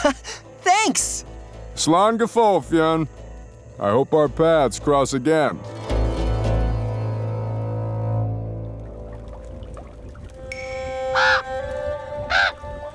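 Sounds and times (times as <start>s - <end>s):
speech: 0.0s - 1.2s, 1.8s - 3.2s, 3.8s - 5.7s
low droning tone: 6.6s - 11.1s
raven cawing: 11.0s - 11.6s, 12.3s - 12.6s.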